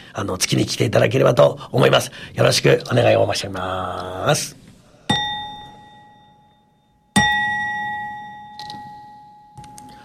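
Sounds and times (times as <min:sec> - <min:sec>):
speech: 0:00.2 - 0:04.6
temple bell being struck: 0:05.1 - 0:10.0.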